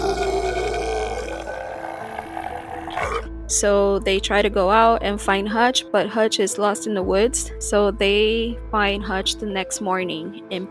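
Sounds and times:
monster creature roaring: 0.0s - 3.3s
speech: 3.2s - 10.7s.

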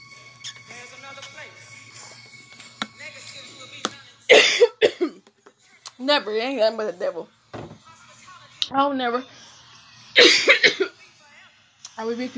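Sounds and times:
man coughing: 4.3s - 5.2s, 10.2s - 10.9s
speech: 6.1s - 7.4s, 8.7s - 9.4s, 12.0s - 12.3s.

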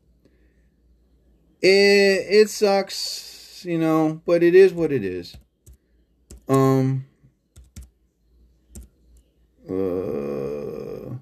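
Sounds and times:
speech: 1.6s - 5.4s
typing on a computer keyboard: 5.3s - 6.8s, 7.5s - 7.9s, 8.7s - 9.3s
drawn-out vocal groans or hums: 9.6s - 11.2s.

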